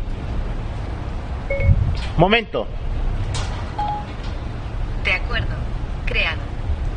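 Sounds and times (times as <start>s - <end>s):
steady low rumble: 0.0s - 6.9s
voice assistant activation beep in hands-free mode: 1.5s - 1.8s, 3.8s - 4.1s
speech: 1.5s - 3.0s, 5.3s - 6.5s.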